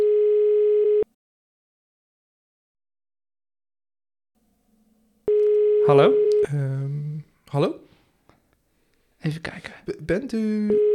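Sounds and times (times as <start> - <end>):
steady mid-pitched telephone tone as a call is being connected: 0.0 - 1.1, 5.3 - 6.5, 10.7 - 10.9
speech: 5.9 - 7.8, 9.2 - 10.9.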